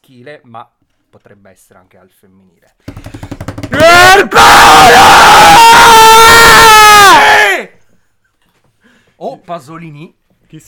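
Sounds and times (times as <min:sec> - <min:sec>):
speech: 0:00.1 - 0:03.1, 0:04.1 - 0:05.7, 0:09.5 - 0:10.6
person yelling in a raw strained scream: 0:03.8 - 0:07.7.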